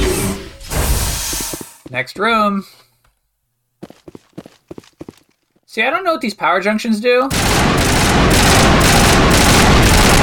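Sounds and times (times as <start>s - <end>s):
speech: 1.9s - 2.9s, 5.8s - 8.4s
video game gunfire from shooting enemies: 7.3s - 10.2s.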